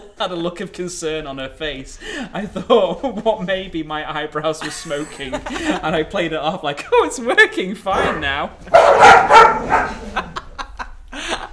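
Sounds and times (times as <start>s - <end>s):
speech: 0.2s - 10.2s
laughter: 4.6s - 7.7s, 9.7s - 11.5s
dogs barking: 7.9s - 10.2s
dog yipping: 8.8s - 10.0s.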